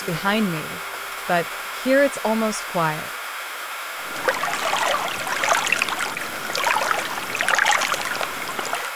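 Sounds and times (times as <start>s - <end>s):
speech: 0.0s - 3.2s
river water lapping against a stone embankment in Prague: 4.0s - 8.9s.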